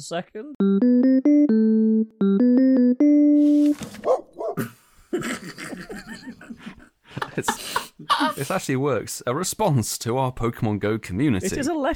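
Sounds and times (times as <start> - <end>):
speech: 0.0 - 2.2, 8.4 - 11.9
bright electronic beeping tones: 0.6 - 3.4
dog barking and yipping sound effect: 4.0 - 4.6.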